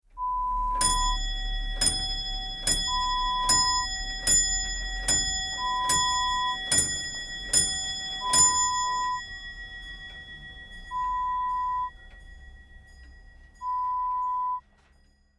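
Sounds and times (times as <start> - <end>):
grandfather clock: 0.1 - 15.3.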